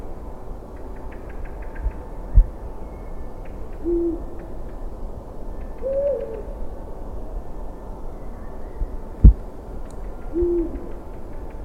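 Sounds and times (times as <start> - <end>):
faint clicking rattles: 0.0 - 6.4, 9.2 - 11.6
Eagle-owl hoot: 3.8 - 4.5, 5.8 - 6.6, 10.3 - 11.0.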